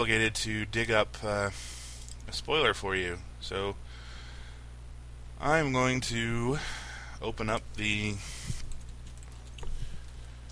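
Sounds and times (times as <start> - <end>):
speech: 0.0 - 3.9, 5.4 - 8.4
low steady hum: 0.0 - 10.5
computer keyboard clicking: 8.6 - 10.5.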